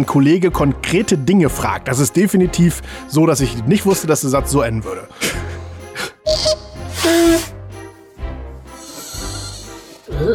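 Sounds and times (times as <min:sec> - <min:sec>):
speech: 0:00.0 - 0:05.6
squeaks whistling through the nose: 0:06.3 - 0:07.6.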